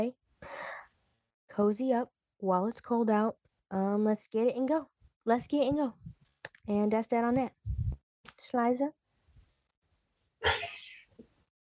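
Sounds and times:
speech: 0.0s - 0.7s, 1.6s - 7.8s, 8.5s - 9.0s
person sneezing: 10.4s - 11.0s.

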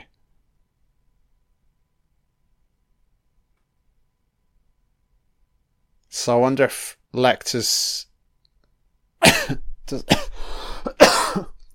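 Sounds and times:
speech: 6.1s - 8.1s, 9.2s - 10.3s
person coughing harshly: 9.2s - 11.7s.

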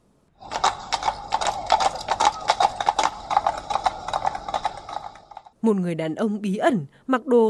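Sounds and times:
white horse with harness galloping past: 0.4s - 5.6s
speech: 5.6s - 7.4s.

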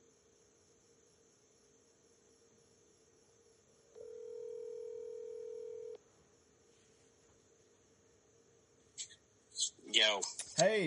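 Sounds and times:
telephone dial tone: 4.0s - 6.0s
speech: 10.0s - 10.8s.

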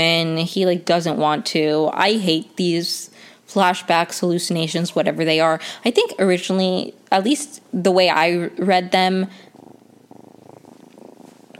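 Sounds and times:
speech: 0.0s - 9.4s
foster kitten purring: 8.1s - 11.5s.

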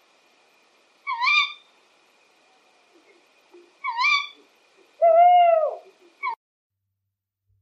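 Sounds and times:
tawny owl calls in Bortziriak Navarra Spain: 1.0s - 1.7s, 3.8s - 6.4s.

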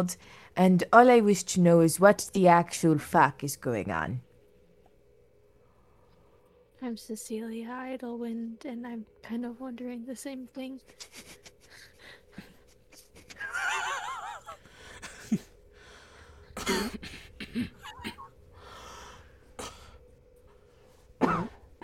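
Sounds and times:
speech: 0.0s - 4.3s, 6.8s - 11.9s, 17.6s - 17.8s
person clearing throat: 16.6s - 18.3s, 21.2s - 21.8s
player voicing a character coughing: 16.6s - 18.3s, 21.2s - 21.8s.

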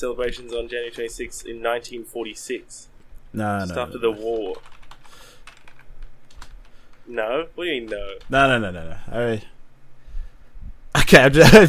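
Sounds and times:
speech: 0.0s - 5.3s, 7.1s - 9.5s, 11.1s - 11.6s
typing on a computer keyboard: 4.2s - 7.0s.

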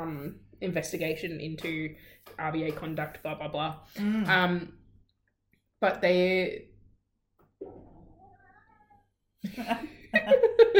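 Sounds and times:
speech: 0.0s - 4.8s, 5.8s - 6.7s, 9.4s - 10.7s
cranky cat meowing near its dinner time: 8.1s - 9.1s.

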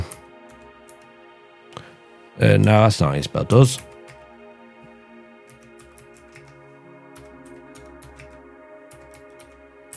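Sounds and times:
speech: 2.4s - 3.9s
typing with two fingers on a mechanical keyboard: 7.5s - 9.9s.

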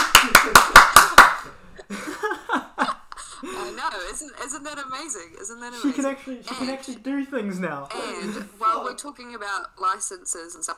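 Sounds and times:
hand claps: 0.0s - 1.5s
speech: 4.2s - 10.7s.

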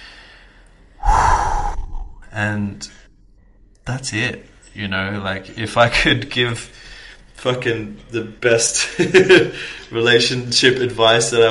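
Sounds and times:
deep breathy inhale: 0.0s - 2.4s
speech: 2.4s - 3.0s, 3.9s - 11.4s.

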